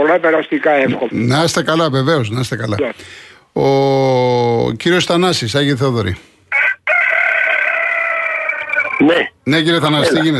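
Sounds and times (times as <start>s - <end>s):
speech: 0.0s - 6.3s, 9.0s - 10.3s
rooster crowing: 6.5s - 9.0s.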